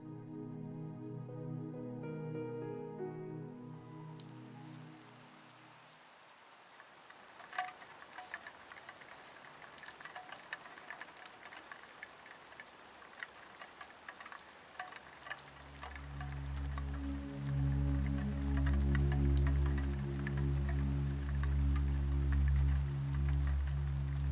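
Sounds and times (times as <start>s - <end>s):
gentle sustained musical drone: 0.0s - 5.6s, 15.5s - 24.3s
light rain pattering on window glass: 3.8s - 24.3s.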